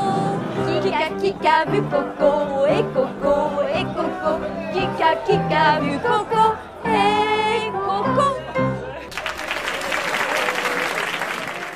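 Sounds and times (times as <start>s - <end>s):
sung French melody with music: 0.0s - 9.0s
speech: 0.8s - 8.4s
noisy crowd at a venue with tables applauding: 9.1s - 11.7s.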